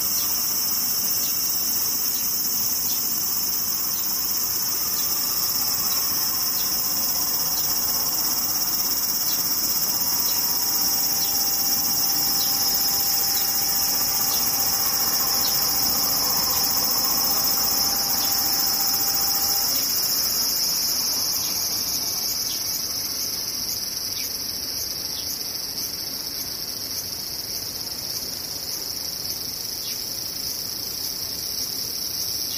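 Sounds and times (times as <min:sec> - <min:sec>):
thin steady tone: 0:00.0 - 0:23.1
cicadas droning in a dense chorus: 0:00.0 - 0:32.5.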